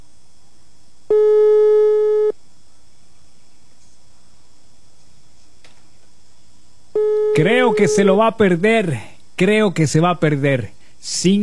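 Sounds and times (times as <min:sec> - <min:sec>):
electronic telephone ringing tone on outgoing call to a mobile phone: 0:01.1 - 0:02.3, 0:07.0 - 0:08.1
speech: 0:07.4 - 0:11.4.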